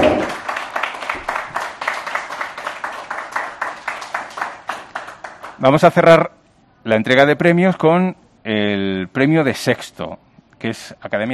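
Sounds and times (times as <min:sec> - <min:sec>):
audience at an awards ceremony clapping rhythmically: 0:00.0 - 0:05.9
speech: 0:05.6 - 0:11.3.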